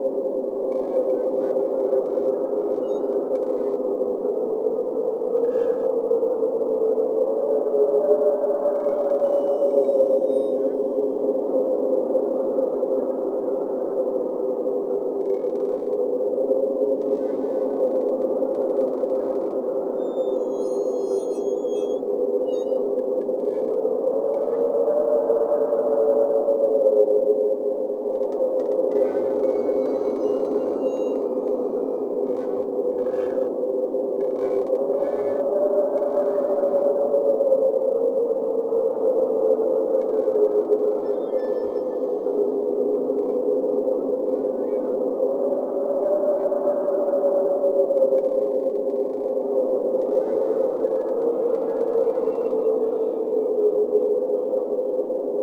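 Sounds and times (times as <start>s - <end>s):
wind in a ghost town: 0.0s - 55.4s.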